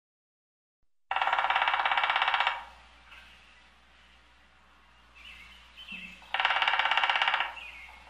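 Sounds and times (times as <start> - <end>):
woodpecker drumming: 1.1 - 3.3, 5.5 - 8.0.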